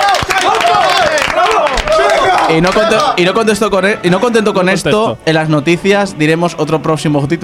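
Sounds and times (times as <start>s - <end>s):
loud applause with dense rapid clapping: 0.0s - 3.2s
excited voices shouting and cheering: 0.0s - 3.6s
speech: 2.5s - 7.4s.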